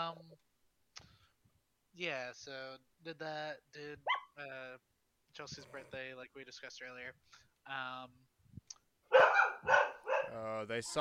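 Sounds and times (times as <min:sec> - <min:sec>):
speech: 0:00.1 - 0:01.1, 0:02.0 - 0:08.2, 0:09.1 - 0:10.9
dogs barking: 0:09.1 - 0:10.4.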